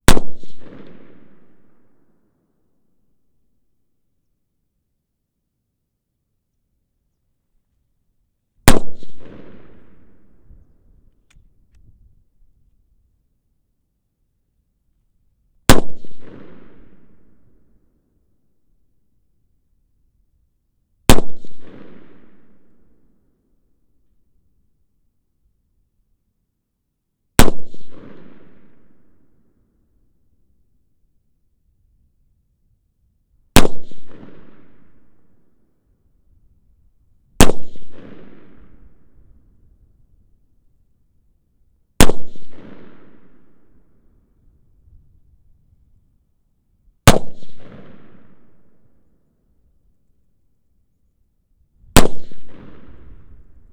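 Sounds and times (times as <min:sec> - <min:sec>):
Mosin-Nagant rifle shots at 1m front right: 0:00.1 - 0:01.5, 0:08.7 - 0:10.2, 0:15.7 - 0:17.0, 0:21.1 - 0:22.2, 0:27.4 - 0:28.4, 0:33.6 - 0:34.7, 0:37.4 - 0:38.8, 0:42.0 - 0:43.3, 0:47.1 - 0:48.4, 0:52.0 - 0:53.4.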